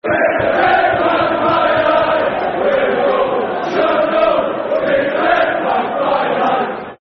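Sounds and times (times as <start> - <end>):
football crowd chanting a soccer song: 0.0 - 6.9.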